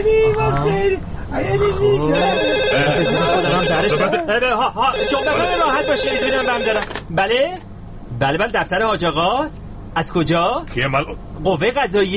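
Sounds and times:
speech: 0.0s - 12.1s
telephone ringing tone on an outgoing call from a mobile phone: 2.1s - 4.2s, 4.9s - 6.8s.

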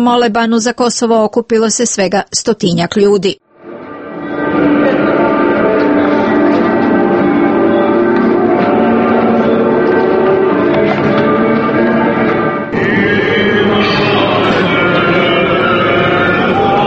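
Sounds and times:
speech: 0.0s - 3.4s
church bells ringing: 3.7s - 16.8s.

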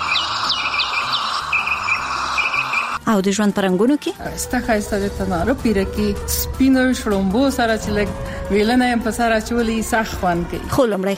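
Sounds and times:
birds chirping in Afghanistan: 0.0s - 3.0s
speech: 3.1s - 11.1s.

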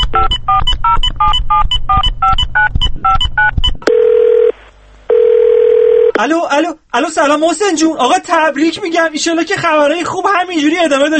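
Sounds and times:
telephone keypad tones as a call is placed: 0.0s - 4.5s
steady telephone ringing tone: 3.8s - 6.2s
speech: 6.2s - 11.1s.

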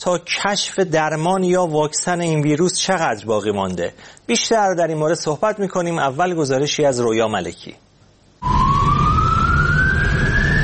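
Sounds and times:
speech: 0.0s - 7.8s
ambulance siren: 8.4s - 10.6s.

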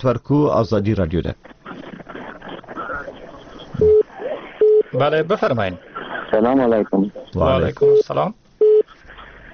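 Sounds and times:
speech: 0.0s - 1.6s, 4.9s - 8.4s
telephone line noise: 0.4s - 9.5s
telephone busy tone beep as a call drops: 3.8s - 4.0s, 8.6s - 8.8s.

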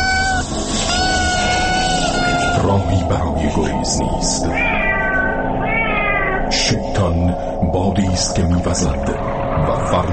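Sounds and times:
kitten meowing: 0.0s - 2.6s, 4.6s - 6.4s
dense steady noisy background: 0.0s - 10.1s
speech: 2.7s - 4.8s, 6.7s - 10.1s.

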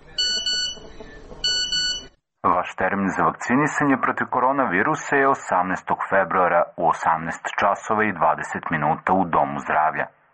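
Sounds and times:
phone text message notification tone for an incoming message: 0.1s - 2.1s
speech: 2.6s - 10.2s.

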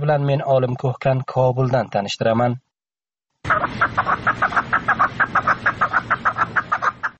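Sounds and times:
speech: 0.0s - 2.7s
partridges kept for singing and fighting in northern Afghanistan clucking: 3.5s - 7.1s.

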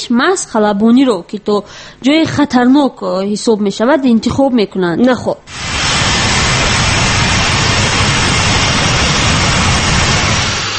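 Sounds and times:
speech: 0.1s - 5.7s
Boeing airliner jet engines roaring in flight: 5.5s - 10.7s.

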